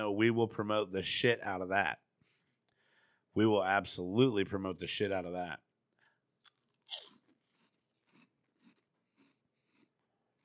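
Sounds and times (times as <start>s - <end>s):
speech: 0.0s - 2.0s, 3.4s - 5.6s, 6.9s - 7.2s
crunchy chewing into microphone: 6.4s - 10.4s.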